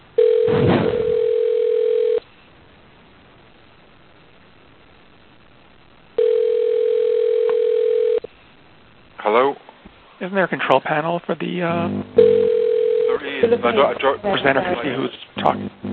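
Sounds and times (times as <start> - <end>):
electronic telephone tone over a phone line: 0.2 - 2.2, 6.2 - 8.3, 11.8 - 13.9
speech: 10.3 - 12.3, 13.2 - 15.8.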